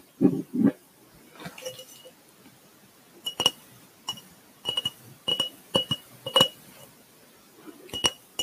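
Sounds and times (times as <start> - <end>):
fingertips tapping a glass jar: 3.2 - 6.9, 7.9 - 8.4.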